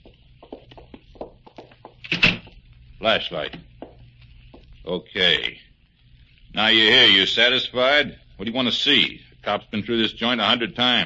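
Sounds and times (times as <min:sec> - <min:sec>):
soft taps and shuffling handling sounds: 0:00.0 - 0:02.8, 0:03.4 - 0:04.8
door being opened: 0:02.0 - 0:02.5
speech: 0:03.0 - 0:03.7, 0:04.8 - 0:05.6, 0:06.6 - 0:11.0.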